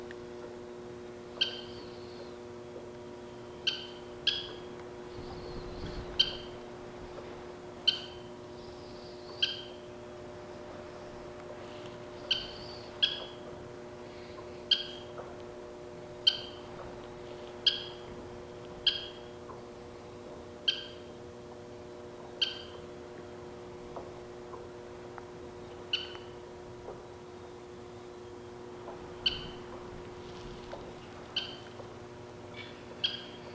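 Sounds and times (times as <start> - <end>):
Western Kingbird Tyrannus verticalis: 1.3 - 2.5, 3.2 - 6.7, 7.8 - 11.1, 12.0 - 15.4, 16.2 - 16.9, 17.5 - 18.2, 18.8 - 21.2, 22.2 - 22.9, 25.6 - 33.5.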